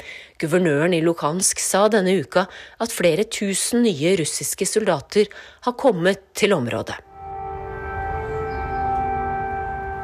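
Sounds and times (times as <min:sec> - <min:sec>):
speech: 0:00.4 - 0:07.1
air raid siren droning: 0:07.0 - 0:10.0.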